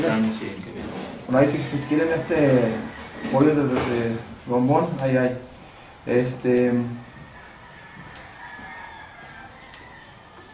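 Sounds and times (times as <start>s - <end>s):
speech: 0.0s - 7.0s
steady hum: 0.0s - 10.5s
rooster crowing: 1.4s - 4.4s, 6.7s - 10.5s
sharp ticks: 1.7s - 2.1s, 4.9s - 5.2s, 6.4s - 6.8s, 8.1s - 8.3s, 9.7s - 9.9s.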